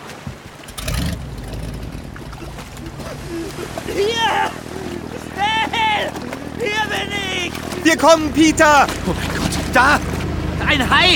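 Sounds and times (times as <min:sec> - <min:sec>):
motorboat engine starting: 0:00.4 - 0:11.1
laughter: 0:02.1 - 0:10.0
people shouting: 0:02.8 - 0:08.2
speech: 0:03.4 - 0:04.8, 0:05.4 - 0:11.1.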